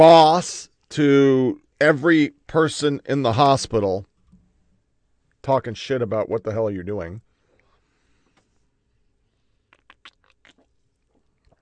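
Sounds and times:
speech: 0:00.0 - 0:04.1, 0:05.4 - 0:07.3
soft hiss: 0:00.0 - 0:11.6
slurping a drink: 0:09.7 - 0:11.6.

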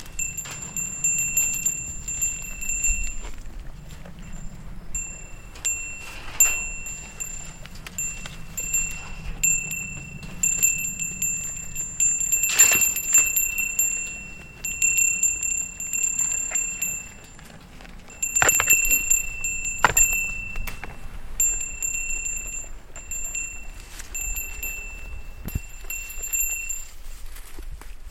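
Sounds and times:
goat bells ringing at the edge of a meadow: 0:00.0 - 0:27.3.

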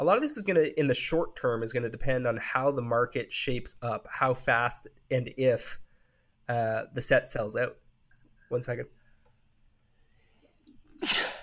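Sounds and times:
speech: 0:00.0 - 0:05.8, 0:06.5 - 0:07.8, 0:08.5 - 0:09.0, 0:11.0 - 0:11.3
person sneezing: 0:10.9 - 0:11.4.

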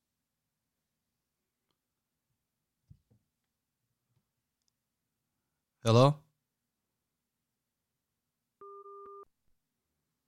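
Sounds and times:
speech: 0:05.8 - 0:06.2
steady electronic telephone tone of a dropped call: 0:08.6 - 0:09.3.

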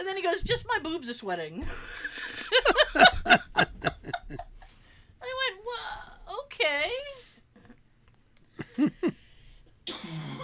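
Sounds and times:
speech: 0:00.0 - 0:04.5
laughter: 0:01.8 - 0:04.6, 0:08.6 - 0:09.2
person clearing throat: 0:09.9 - 0:10.4
person coughing: 0:09.9 - 0:10.4.

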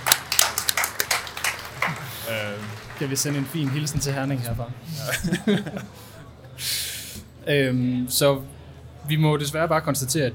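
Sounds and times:
small group clapping: 0:00.0 - 0:04.6
laughter: 0:00.9 - 0:04.0, 0:04.8 - 0:06.3
speech: 0:02.3 - 0:06.8, 0:07.4 - 0:10.3.

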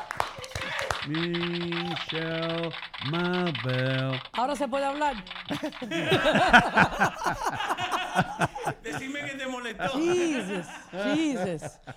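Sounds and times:
laughter: 0:00.0 - 0:04.3, 0:05.0 - 0:11.9
speech: 0:00.4 - 0:11.9
radio show segment jingle: 0:01.0 - 0:07.2.

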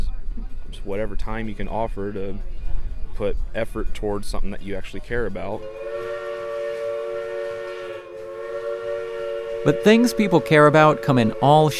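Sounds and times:
speech: 0:00.8 - 0:02.6, 0:03.2 - 0:05.8, 0:09.6 - 0:11.7
sustained train whistle blowing: 0:05.6 - 0:11.7.

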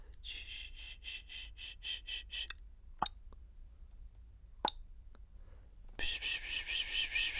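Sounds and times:
voice making whispered pss-pss sounds calling a cat: 0:00.1 - 0:02.6, 0:06.0 - 0:07.3.

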